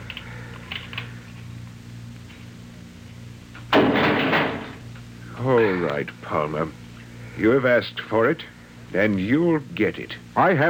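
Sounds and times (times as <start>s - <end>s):
heavy jail door slamming shut: 3.7s - 4.8s
speech: 5.8s - 6.8s, 7.4s - 10.6s.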